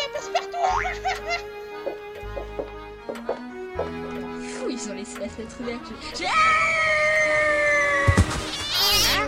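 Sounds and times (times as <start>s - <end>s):
laughter: 0.1s - 2.5s
speech: 5.0s - 7.0s
startled cat yowling: 6.5s - 9.2s.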